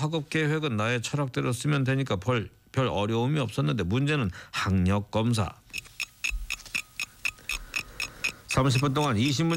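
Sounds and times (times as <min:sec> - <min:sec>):
speech: 0:00.0 - 0:05.7, 0:08.6 - 0:09.5
clock second hand ticking: 0:05.7 - 0:09.5.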